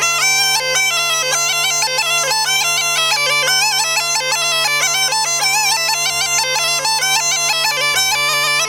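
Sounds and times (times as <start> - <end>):
small gajda bagpipe playing a ruchenitsa dance tune: 0.0 - 8.6.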